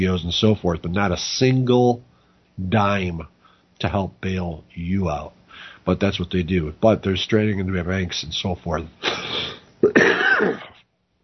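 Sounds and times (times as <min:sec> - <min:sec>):
speech: 0:00.0 - 0:10.6
person coughing: 0:09.0 - 0:10.8.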